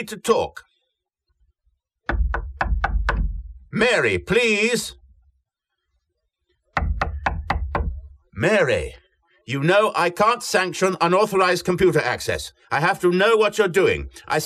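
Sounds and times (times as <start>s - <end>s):
speech: 0.0s - 0.7s, 3.8s - 5.0s, 8.4s - 14.4s
knocking on a door: 2.0s - 3.6s, 6.8s - 8.2s.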